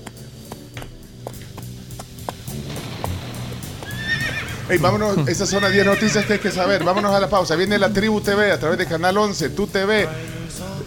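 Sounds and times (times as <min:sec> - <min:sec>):
tired purebred horse's hooves clopping: 0:00.0 - 0:08.2
purebred horse neighing high and wavering: 0:03.8 - 0:08.0
laughter: 0:04.7 - 0:09.1
speech: 0:04.7 - 0:10.4.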